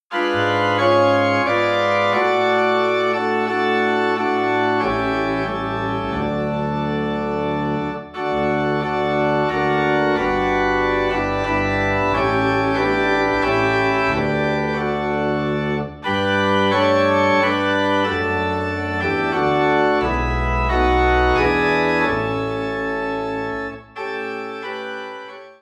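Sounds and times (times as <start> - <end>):
organ piece in D: 0.0 - 25.6.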